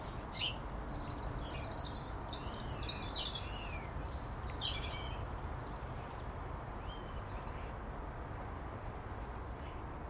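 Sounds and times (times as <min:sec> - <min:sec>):
blackbird singing in a spring morning dawn chorus: 0:00.0 - 0:07.7
steady outdoor hiss: 0:00.0 - 0:10.0.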